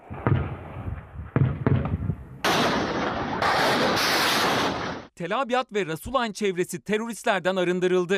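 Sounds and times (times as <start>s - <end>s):
deep booming blasts of artillery fire: 0.0s - 5.1s
speech: 5.2s - 8.1s.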